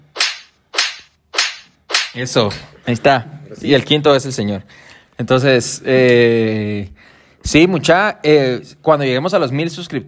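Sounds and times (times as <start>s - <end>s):
sharp loud slaps: 0.1s - 2.7s
speech: 2.1s - 10.0s.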